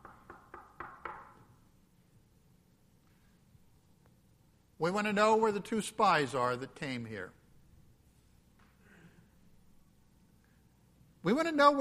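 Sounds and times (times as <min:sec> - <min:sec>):
knocking on a door: 0:00.0 - 0:01.4
speech: 0:04.8 - 0:07.4, 0:11.2 - 0:11.7.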